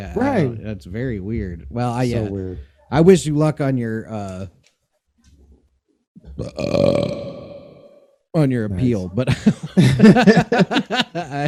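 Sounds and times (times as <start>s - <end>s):
speech: 0.0s - 4.6s, 6.4s - 7.3s, 8.4s - 11.4s
long loud burp: 6.2s - 8.1s
laughter: 9.2s - 11.4s.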